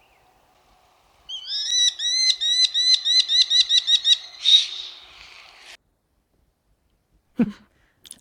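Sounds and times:
American Kestrel alarm call: 0:01.3 - 0:05.4.

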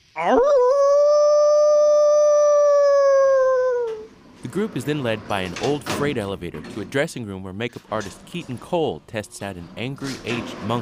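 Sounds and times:
speech: 0:00.2 - 0:00.7, 0:04.5 - 0:10.8
actor howling like a wolf: 0:00.2 - 0:04.1.

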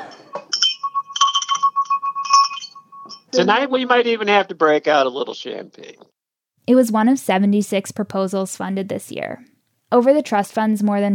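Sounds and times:
small bell ringing: 0:00.0 - 0:03.5
speech: 0:03.3 - 0:11.1.

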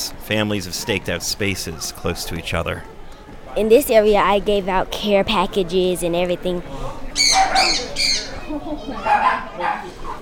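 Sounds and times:
faint indoor voices murmuring: 0:00.0 - 0:10.2
speech: 0:00.3 - 0:03.0, 0:03.6 - 0:07.0
pet birds squawking in a shelter: 0:07.2 - 0:09.4.

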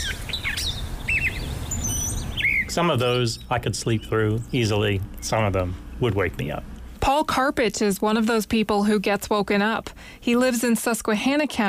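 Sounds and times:
birds chirping: 0:00.0 - 0:07.0
speech: 0:02.8 - 0:11.6.

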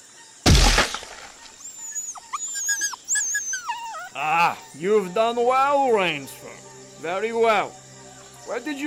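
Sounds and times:
crash of snapping branches as a pit cover gives way: 0:00.4 - 0:01.5
dog yelping in pain after falling into a Burmese tiger pit: 0:01.9 - 0:04.2
speech: 0:04.2 - 0:07.8, 0:08.5 - 0:08.8.

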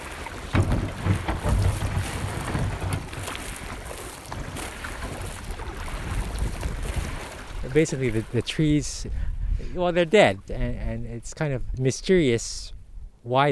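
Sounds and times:
paddles knocking against a small boat: 0:00.0 - 0:08.5
paddles splashing on the Copalis River on the Washington coast: 0:00.0 - 0:11.0
steady outdoor rush: 0:00.0 - 0:11.8
wind buffeting the microphone: 0:00.0 - 0:13.2
speech: 0:07.8 - 0:13.5.

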